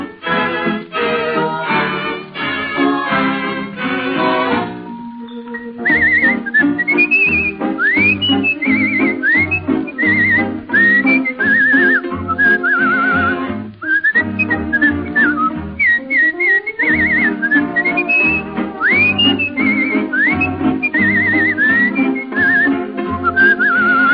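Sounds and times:
steady loud musical accompaniment in a song recording: 0:00.0 - 0:24.1
person whistling bird-like chirps and sliding trills imitating a bird: 0:05.4 - 0:24.1.

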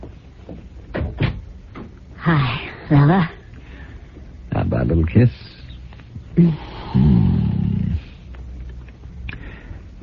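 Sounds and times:
low hum: 0:00.0 - 0:10.0
door swinging shut with solid thuds: 0:00.9 - 0:01.9
speech: 0:02.3 - 0:03.4, 0:04.9 - 0:05.5.

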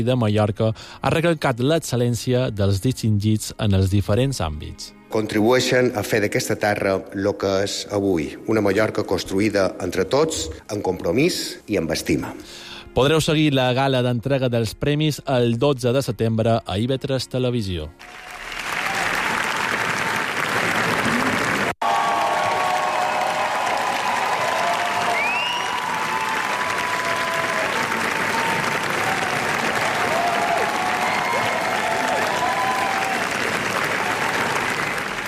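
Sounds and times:
speech: 0:00.0 - 0:18.3
audience cheers: 0:18.0 - 0:35.2
large audience applause at a film premiere: 0:18.0 - 0:35.2
faint whistles from audience: 0:25.1 - 0:26.0.

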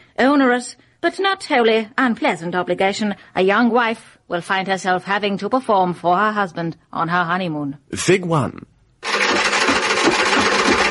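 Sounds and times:
speech: 0:00.3 - 0:08.7
sewing machine running while machine stitching: 0:09.0 - 0:10.8.

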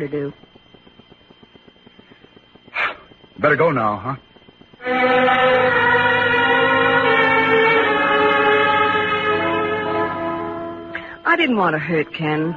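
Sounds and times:
speech: 0:00.0 - 0:00.6, 0:03.4 - 0:06.2, 0:11.3 - 0:12.5
departing train whistle blast: 0:04.8 - 0:12.5.

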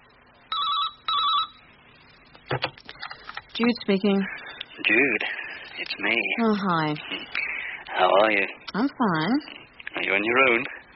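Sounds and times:
telephone ringing with a warbling electronic buzz: 0:00.5 - 0:01.7
speech: 0:02.5 - 0:02.8, 0:03.6 - 0:07.4, 0:08.0 - 0:10.8.

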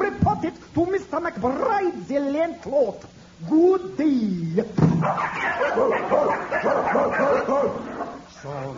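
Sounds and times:
speech: 0:00.4 - 0:08.7
several dogs barking and yipping: 0:05.0 - 0:08.3.

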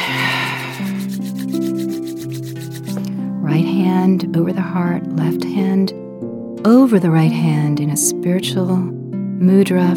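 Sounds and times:
palms rubbed briskly together to build heat: 0:00.0 - 0:03.1
speech: 0:03.5 - 0:06.0, 0:06.6 - 0:09.9.

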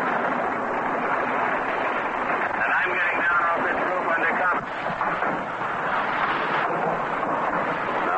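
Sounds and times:
anti-aircraft gunfire from convoy warships at sea: 0:00.0 - 0:08.1
crackly noisy background: 0:00.0 - 0:08.1
voice: 0:02.6 - 0:04.7.

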